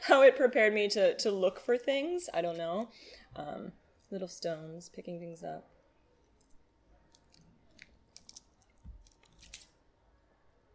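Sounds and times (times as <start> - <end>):
speech: 0.0 - 5.7
chewing chewy boba tapioca pearls: 6.2 - 9.8.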